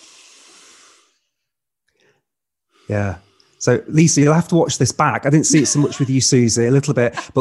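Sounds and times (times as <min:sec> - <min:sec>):
people taking a deep breath: 0:00.0 - 0:03.6
speech: 0:02.9 - 0:07.4
laughter: 0:05.3 - 0:07.4.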